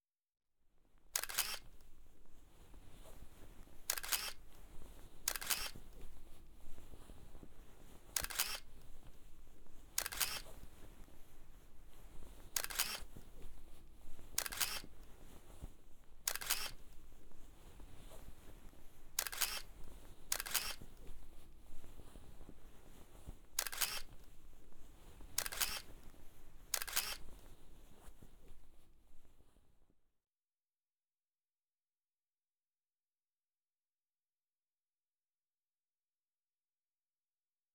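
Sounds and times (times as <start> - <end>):
footjob ASMR sounds: 1.2 - 28.8.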